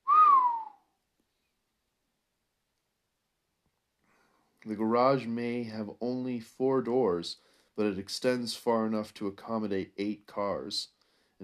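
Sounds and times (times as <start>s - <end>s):
person giving a low whistle of admiration on stepping into a large garage: 0.0s - 0.9s
speech: 4.6s - 11.4s.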